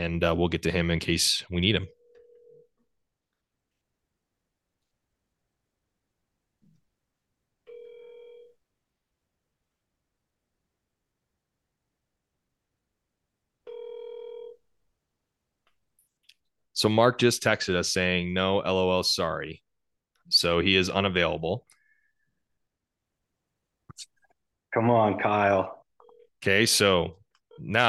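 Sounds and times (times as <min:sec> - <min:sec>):
speech: 0:00.0 - 0:02.0, 0:16.8 - 0:19.6, 0:20.3 - 0:21.8, 0:24.7 - 0:25.8, 0:26.4 - 0:27.8
telephone ringback tone while placing a call: 0:07.7 - 0:08.5, 0:13.7 - 0:14.6.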